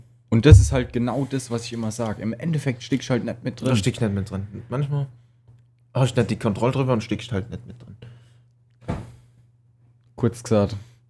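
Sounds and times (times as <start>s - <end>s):
speech: 0.3s - 5.2s, 6.0s - 8.0s, 10.2s - 10.9s
dull thud of a door being shut: 0.5s - 1.1s
steady low hum: 0.5s - 1.1s.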